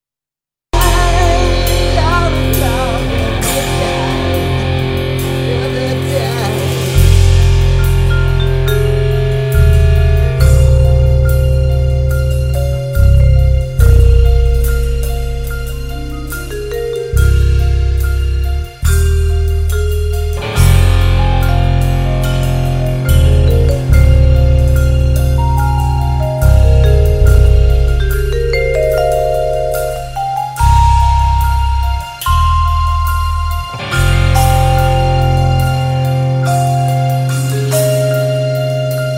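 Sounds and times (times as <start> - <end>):
rock band playing: 0.8 - 39.1.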